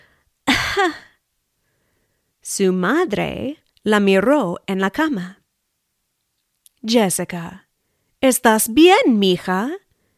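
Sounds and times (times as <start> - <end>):
girl pretending to be sick giving an exaggerated fake cough: 0.5 - 1.2
speech: 0.8 - 1.1, 2.4 - 5.4, 6.8 - 7.6, 8.2 - 9.8.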